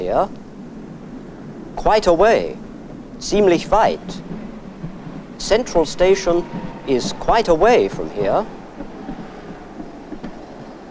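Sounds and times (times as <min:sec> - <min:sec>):
speech: 0:00.0 - 0:00.4, 0:01.8 - 0:04.4, 0:05.4 - 0:08.6
light wind noise: 0:00.0 - 0:10.8
tram pulling into a stop in Dresden: 0:00.0 - 0:10.8
soft knocks: 0:04.2 - 0:10.8.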